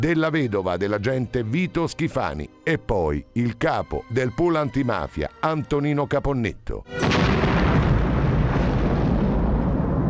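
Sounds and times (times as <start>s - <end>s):
speech: 0.0s - 7.4s
500 kg TNT bomb blast on a motorway: 7.0s - 10.0s.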